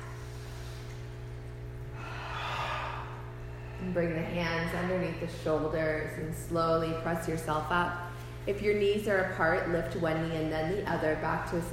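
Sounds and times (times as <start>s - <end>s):
steady low hum: 0.0s - 11.7s
deep breath in through the nose, out through the mouth: 1.9s - 4.4s
speech: 3.8s - 11.7s.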